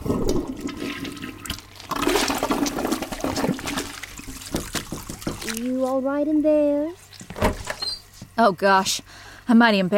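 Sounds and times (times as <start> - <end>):
toilet flushing with rushing, gurgling water: 0.0 - 5.6
speech: 5.6 - 7.0, 8.4 - 9.9.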